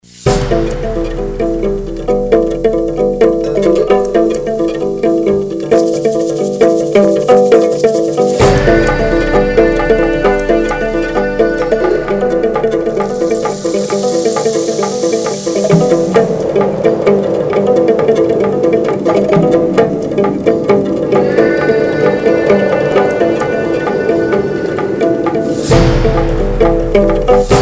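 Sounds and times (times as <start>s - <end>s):
African village ambience: 0.3s - 27.6s.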